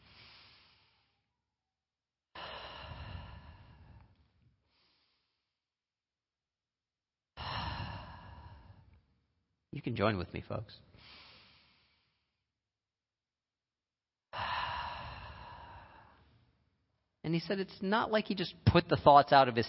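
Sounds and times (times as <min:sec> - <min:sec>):
deep breaths: 0:00.0 - 0:01.5, 0:02.3 - 0:05.7, 0:07.4 - 0:09.4, 0:10.8 - 0:12.5, 0:14.3 - 0:17.1
speech: 0:09.8 - 0:10.9, 0:17.3 - 0:19.6.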